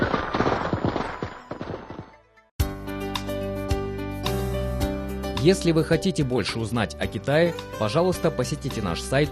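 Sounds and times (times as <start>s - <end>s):
firecrackers exploding: 0.0s - 2.2s
music: 2.1s - 9.3s
speech: 5.4s - 9.3s.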